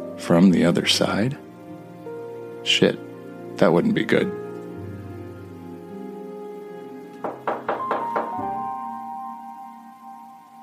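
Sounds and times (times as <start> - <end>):
speech: 0.2 - 1.4, 2.6 - 4.4
knocking on a door: 7.2 - 8.7.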